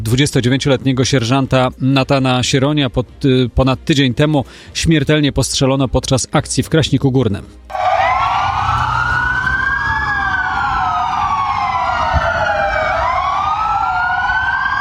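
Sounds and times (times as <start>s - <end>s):
speech: 0.1s - 7.9s
police car sirens wailing across Poland: 7.7s - 14.7s
low rumble of traffic or engines: 7.8s - 14.7s.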